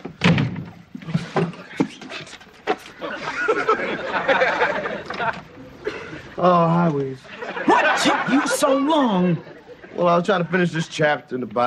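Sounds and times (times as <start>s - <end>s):
door slamming shut: 0.0s - 1.9s
murmur of chatter and laughter: 1.3s - 11.6s
speech: 6.4s - 7.3s, 8.0s - 11.6s.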